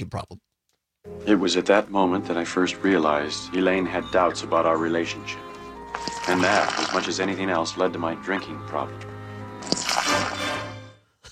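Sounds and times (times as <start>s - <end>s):
speech: 0.0s - 9.1s
Gatorade pouring into a cup: 5.9s - 7.1s, 9.6s - 10.6s
Gatorade splashed from a cup over a man's face: 9.6s - 10.6s.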